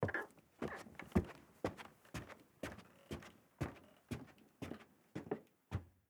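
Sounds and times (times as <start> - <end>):
footsteps on carpeted stairs: 0.0 - 5.9.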